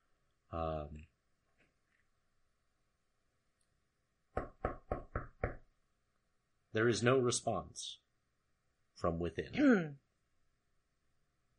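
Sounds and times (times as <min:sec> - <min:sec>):
speech: 0:00.5 - 0:01.1, 0:06.8 - 0:08.0, 0:09.0 - 0:10.0
knocking on an iron door: 0:04.4 - 0:05.6.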